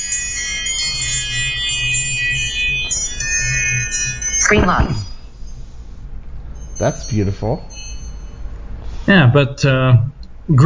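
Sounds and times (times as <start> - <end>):
bright electronic notification chime tones: 0.0 - 5.3, 6.6 - 8.5
soft low hum: 0.0 - 8.9
speech: 4.5 - 5.1, 6.8 - 7.8, 9.1 - 10.6.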